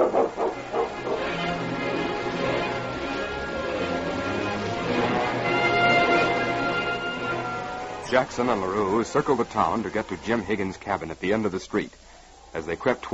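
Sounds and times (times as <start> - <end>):
husky hitched to a sled barking in front of a cabin: 0.0 - 1.3
other dog noises: 0.0 - 1.7
busy continuous backdrop: 0.0 - 13.1
speech: 8.1 - 13.1.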